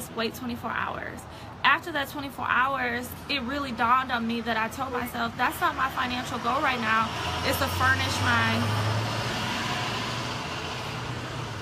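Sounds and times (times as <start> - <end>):
speech: 0.2 - 9.0
big truck rumbling past with engine and road noise: 5.8 - 11.6.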